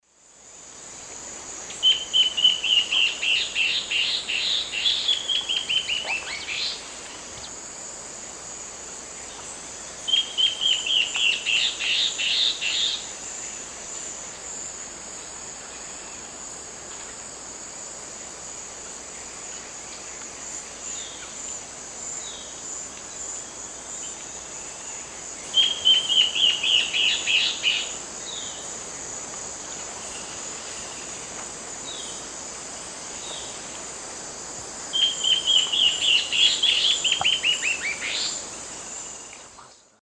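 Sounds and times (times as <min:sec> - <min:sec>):
Hypocnemis peruvianus duet in South American eastern lowlands: 0:01.7 - 0:07.5, 0:09.2 - 0:13.6, 0:24.1 - 0:28.7, 0:35.0 - 0:39.8.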